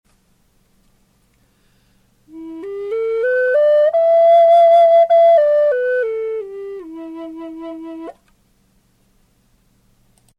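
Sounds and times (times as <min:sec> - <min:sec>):
Native American flutes in E: 0:02.3 - 0:08.2.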